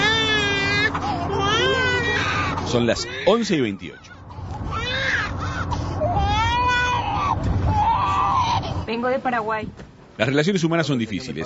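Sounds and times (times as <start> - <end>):
infant crying: 0.0 - 8.9
speech: 2.7 - 4.2, 8.9 - 11.4.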